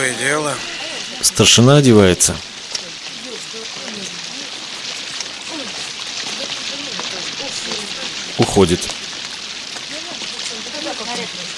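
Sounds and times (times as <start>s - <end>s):
speech: 0.0s - 2.5s, 8.5s - 9.0s
rain falling: 0.0s - 11.5s.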